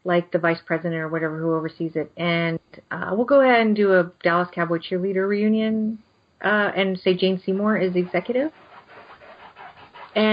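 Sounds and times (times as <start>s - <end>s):
speech: 0.0s - 8.6s, 10.1s - 10.3s
female dog making a rhythmic washboard-like rubbing noise: 7.2s - 10.3s.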